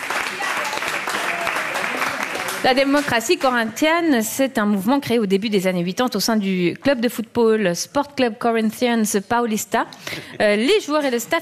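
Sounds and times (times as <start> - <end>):
audience applause for a correct answer at a football quiz: 0.0 - 3.6
speech: 2.6 - 11.4.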